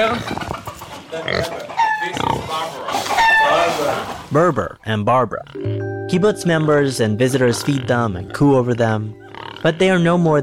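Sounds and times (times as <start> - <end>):
speech: 0.0 - 0.5, 1.1 - 10.4
pet pig snorting and grunting at a kibbutz: 0.0 - 5.6, 6.5 - 10.3.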